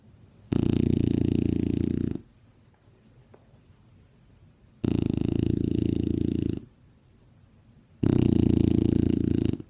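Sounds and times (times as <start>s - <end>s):
rescued dog snoring and grunting contentedly: 0.5s - 2.3s, 4.8s - 6.7s, 8.0s - 9.6s.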